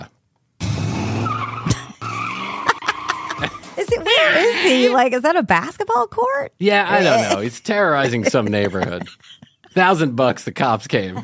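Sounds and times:
convertible car tires squealing in a spin-out: 0.6 - 5.0
laughter: 2.5 - 5.1, 6.9 - 10.2
speech: 3.4 - 11.2.

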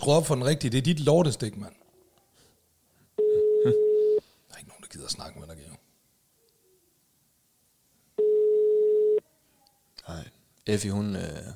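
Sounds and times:
speech: 0.0 - 1.8, 3.6 - 3.9, 5.0 - 5.6, 10.1 - 11.5
telephone busy signal tone: 3.2 - 4.2, 8.2 - 9.2.

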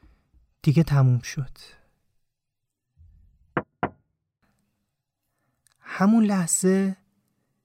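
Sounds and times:
speech: 0.6 - 1.8, 6.0 - 7.0
knocking on car window glass: 3.6 - 4.0.

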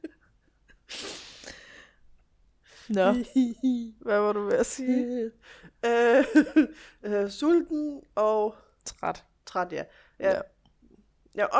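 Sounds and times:
person sneezing: 0.9 - 1.6
faint breathing: 0.9 - 3.0
speech: 2.9 - 10.5, 11.4 - 11.5.

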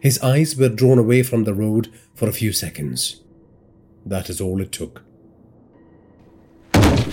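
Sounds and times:
speech: 0.0 - 3.2, 4.0 - 5.1
car crash: 6.7 - 7.1
harsh crunching of metal from the front of the car: 6.7 - 7.1.

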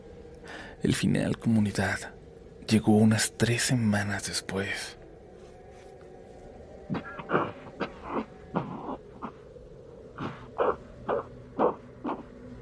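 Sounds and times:
speech: 0.8 - 5.0
short dry coughs: 6.9 - 9.0.

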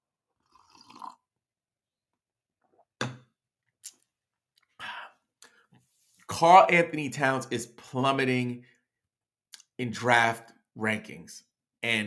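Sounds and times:
person slurping coffee: 0.4 - 1.2
speech: 6.4 - 8.7, 9.8 - 12.0.

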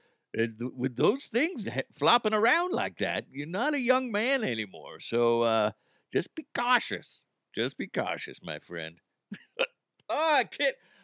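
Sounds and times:
speech: 0.3 - 10.9
person hiccuping with a croaking squeak: 9.4 - 9.7.

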